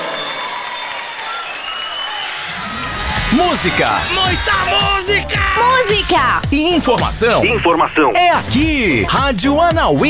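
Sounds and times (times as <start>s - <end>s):
audience applause welcoming a performer onto the stage at a live event: 0.0s - 5.5s
speech: 3.3s - 10.0s.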